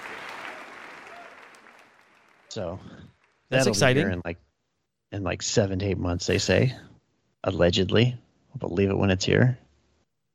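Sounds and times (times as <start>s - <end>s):
audience clapping: 0.0s - 4.0s
speech: 2.6s - 4.5s, 5.1s - 9.6s.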